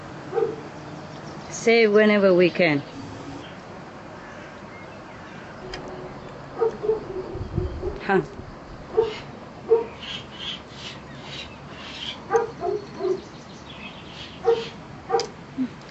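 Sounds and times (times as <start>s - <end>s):
upset dogs barking and yipping: 0.3s - 0.8s, 6.5s - 8.0s, 8.9s - 13.3s, 14.2s - 15.4s
speech: 1.6s - 3.0s, 8.1s - 8.4s.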